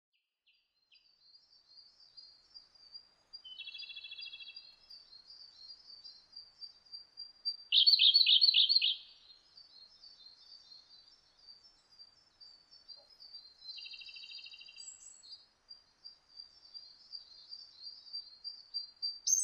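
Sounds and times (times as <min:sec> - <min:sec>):
Siberian blue robin calling: 0:07.7 - 0:09.1.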